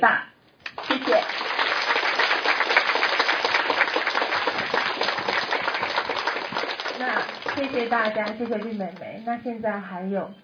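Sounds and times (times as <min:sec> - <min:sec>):
audience applause: 0:00.7 - 0:08.9
speech: 0:07.6 - 0:10.4.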